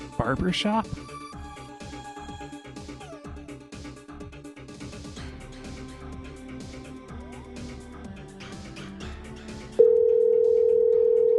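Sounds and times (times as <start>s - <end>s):
speech: 0.2s - 1.2s
steady loud electronic telephone tone: 9.8s - 11.3s.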